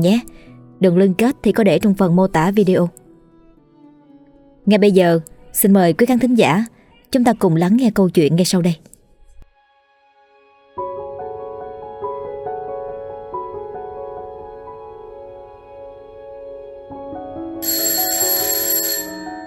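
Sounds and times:
speech: 0.0 - 3.0, 4.7 - 8.9
electronic alarm ringing from a small clock on a table: 17.6 - 19.4.

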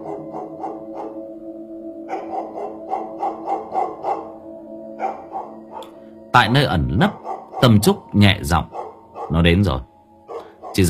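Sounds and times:
dog barking in the distance at night: 0.0 - 1.4, 2.1 - 6.0, 7.1 - 7.9, 8.7 - 9.4, 10.3 - 10.8
speech: 6.3 - 9.9.

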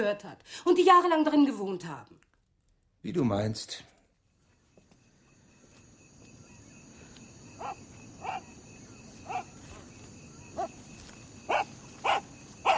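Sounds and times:
speech: 0.0 - 2.3, 3.0 - 3.9
dog barking: 7.6 - 8.5, 9.2 - 9.9, 10.6 - 10.8, 11.5 - 12.7.

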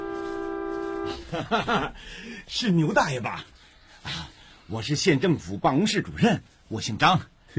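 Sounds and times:
car horn honking in one sustained blast: 0.0 - 1.5
laughter: 1.1 - 2.2
speech: 1.1 - 7.5.

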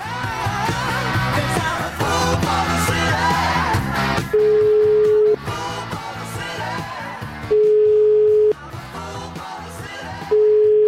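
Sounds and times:
loud music: 0.0 - 10.8
ringback tone of a telephone call being placed: 4.4 - 5.4, 7.5 - 8.6, 10.3 - 10.8.

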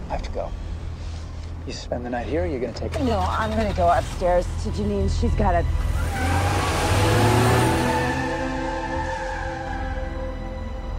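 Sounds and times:
speech: 0.1 - 0.7, 1.6 - 6.4
car engine revving and pulling off: 2.9 - 10.7.

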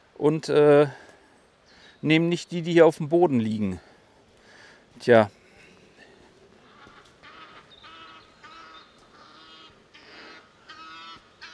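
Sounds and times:
speech: 0.2 - 1.0, 2.0 - 3.9, 5.0 - 5.4
geese honking while flying in formation: 6.6 - 11.5.

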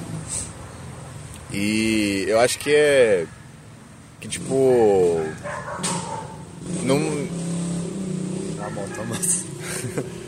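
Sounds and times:
speech: 1.5 - 3.4, 4.2 - 6.1, 6.7 - 7.4, 8.7 - 10.1
dog barking: 5.2 - 6.5, 8.6 - 9.4.

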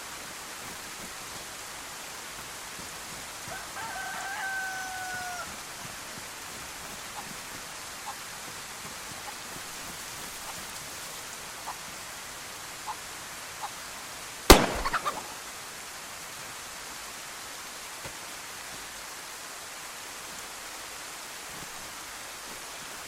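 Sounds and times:
steady hissing rain in a video game: 0.0 - 23.0
rooster crowing in a video game: 3.5 - 5.6.

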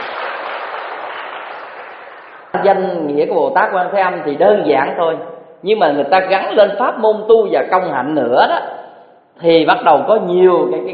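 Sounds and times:
audience applause at a Buddhist dharma talk: 0.0 - 2.6
speech: 2.6 - 8.8, 9.4 - 10.9.

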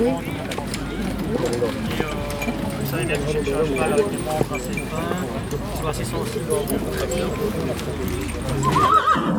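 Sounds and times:
crowd chatter at a small farm fair: 0.0 - 9.3
horse hooves clip-clopping: 0.0 - 9.3
Ardennais and Franche-Montagne cross horse whinnying at a small farm fair: 8.6 - 9.3.

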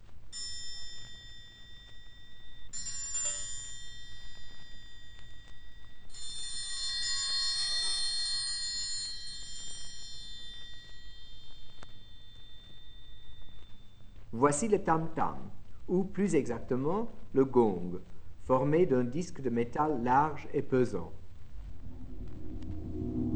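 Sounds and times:
orchestral triangle struck with separate strokes and a roll: 0.4 - 13.6
speech: 14.4 - 21.2.

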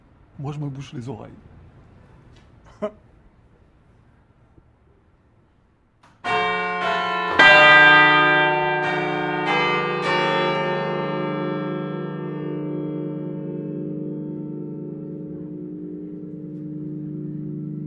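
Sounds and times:
speech: 0.4 - 1.5, 2.8 - 3.1
six church bells of a cathedral ringing together: 6.2 - 17.8.

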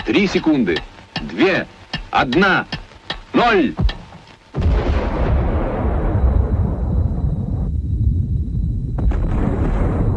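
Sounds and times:
speech: 0.1 - 4.0
detonation of a 50-megaton hydrogen aerial bomb: 4.5 - 10.1.

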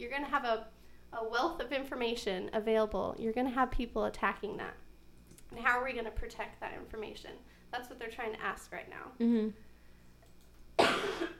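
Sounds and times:
speech: 0.0 - 4.8, 5.5 - 9.6
person coughing: 10.8 - 11.3.

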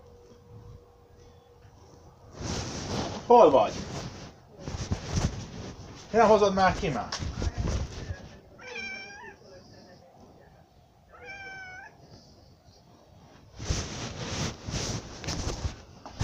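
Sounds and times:
rustling and scuffing: 1.1 - 8.5, 13.2 - 16.2
speech: 3.3 - 3.8, 6.1 - 7.2
cat meowing: 8.6 - 9.4, 11.1 - 12.0.

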